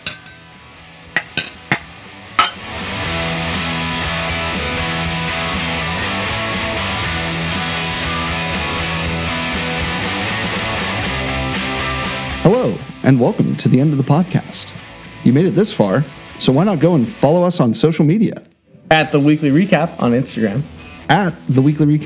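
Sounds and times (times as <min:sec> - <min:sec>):
glasses clinking in a toast: 0:00.0 - 0:00.5, 0:01.2 - 0:02.7
music: 0:00.0 - 0:22.0
speech: 0:12.5 - 0:22.0.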